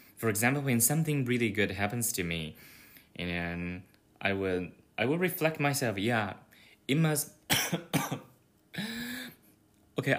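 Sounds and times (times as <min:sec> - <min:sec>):
speech: 0:00.2 - 0:08.9, 0:10.0 - 0:10.1
person coughing in harsh hacking bursts: 0:07.5 - 0:09.4.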